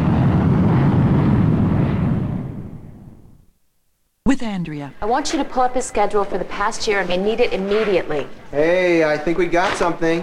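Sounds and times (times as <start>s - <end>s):
airplane flying overhead: 0.0s - 3.4s
speech: 4.3s - 10.2s.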